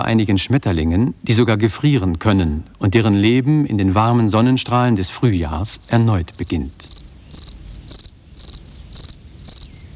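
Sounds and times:
speech: 0.0s - 7.0s
crickets chirping: 5.0s - 9.9s.

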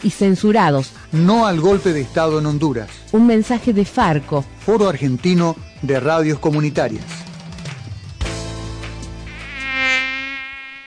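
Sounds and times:
speech: 0.0s - 7.2s
dengue-carrying mosquito buzzing: 9.2s - 10.8s.

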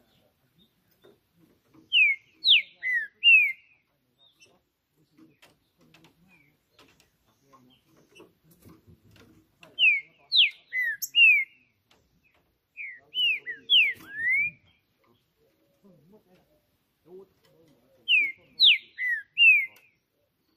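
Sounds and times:
green-winged saltator singing slurred whistles on a roof: 1.9s - 4.4s, 9.8s - 11.7s, 12.7s - 14.8s, 18.1s - 20.5s.

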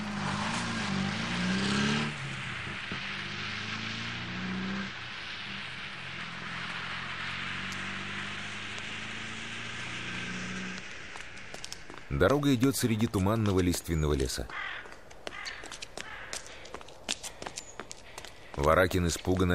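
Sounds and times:
car reversing, turning around and driving away on a road: 0.0s - 15.5s
speech: 12.2s - 14.7s, 18.6s - 19.5s.

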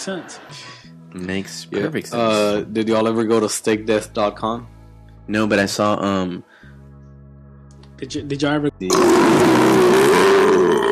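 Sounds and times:
speech: 0.0s - 6.6s, 8.0s - 9.8s
long loud burp: 8.9s - 10.8s.

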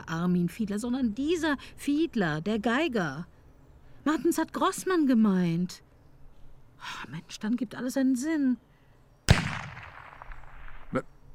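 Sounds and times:
speech: 0.1s - 3.3s, 4.0s - 5.9s, 6.8s - 8.7s, 10.9s - 11.1s
gunshot in an apartment building: 9.3s - 11.0s.

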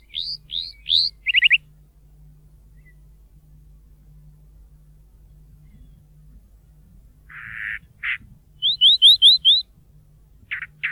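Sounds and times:
Chalk-browed mockingbird Mimus saturninus song: 0.0s - 1.7s, 2.7s - 3.1s, 7.3s - 9.6s, 10.5s - 10.8s.

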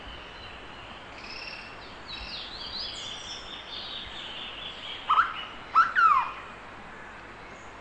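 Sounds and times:
steady high hiss: 0.0s - 7.7s
hooded berryeater (Carpornis cucullata) rising and falling slurred calls: 5.0s - 6.5s.

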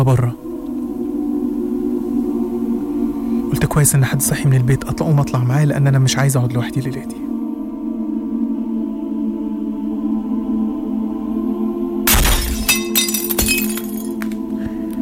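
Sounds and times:
speech: 0.0s - 0.4s, 3.6s - 7.2s
low ominous drone: 0.0s - 15.0s
tinkling glass shards: 12.1s - 14.2s
glass cup shattering: 12.1s - 14.3s.

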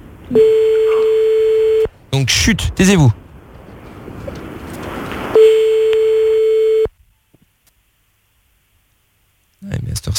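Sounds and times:
speech: 0.3s - 0.7s, 2.2s - 3.2s
telephone ringback tone on an outgoing call: 0.3s - 1.9s, 5.3s - 6.9s.

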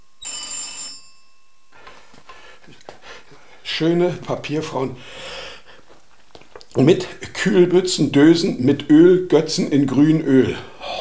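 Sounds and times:
electronic telephone ringing in a radio play: 0.0s - 1.8s
speech: 3.7s - 5.3s, 6.8s - 10.7s.

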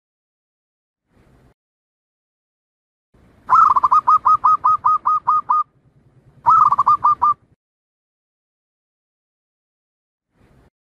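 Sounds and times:
zebra dove song of quick cooing notes with a rolling trill: 3.5s - 5.7s, 6.4s - 7.5s.

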